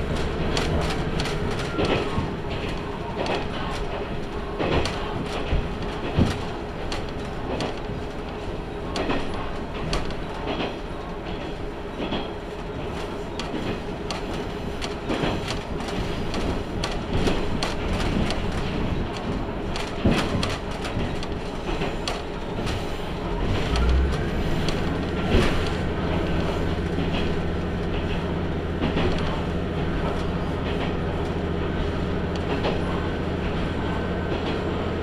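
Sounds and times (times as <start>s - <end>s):
low rumble inside a nearly empty local train car: 0.0s - 35.0s
sharp clicks and knocks from train wheels and rails: 0.0s - 35.0s
deeper train engine drone: 23.3s - 27.3s.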